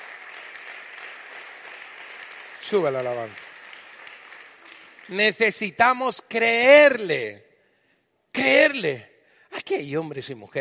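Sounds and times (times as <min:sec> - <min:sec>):
audience applauding: 0:00.0 - 0:05.8
speech: 0:02.7 - 0:03.5, 0:05.1 - 0:07.5, 0:08.4 - 0:10.5.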